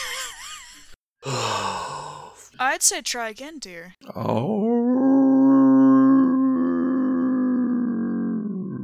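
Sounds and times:
speech: 2.6s - 4.8s
person imitating a werewolf howl: 4.2s - 8.8s.

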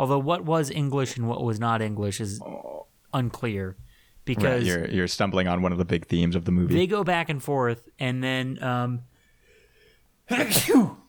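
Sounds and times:
speech: 0.0s - 9.1s, 10.3s - 11.0s
loud sneeze with breathy intake: 10.3s - 11.0s.

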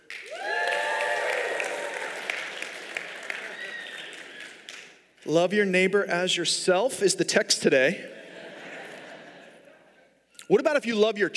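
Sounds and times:
church congregation applauding: 0.0s - 5.2s
speech: 5.3s - 8.2s, 10.5s - 11.3s
laughter: 8.0s - 10.2s.

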